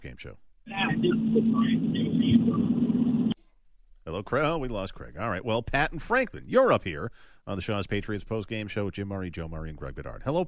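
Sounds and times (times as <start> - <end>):
speech: 0.0 - 3.4, 4.1 - 10.4
moving car interior road rumble over a phone line: 0.7 - 3.4.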